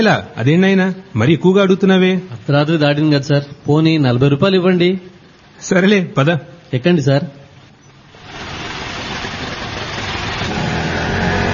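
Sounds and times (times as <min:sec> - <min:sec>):
speech: 0:00.0 - 0:07.4
auto rickshaw engine running at night: 0:08.1 - 0:11.5.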